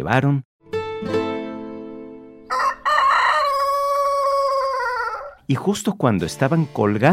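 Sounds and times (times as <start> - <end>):
speech: 0.0 - 1.2, 5.5 - 7.1
rooster crowing: 2.5 - 5.4.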